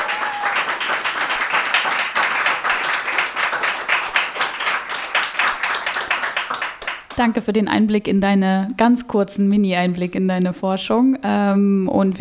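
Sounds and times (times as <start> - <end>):
crowd applause: 0.0 - 7.2
speech: 7.2 - 12.1.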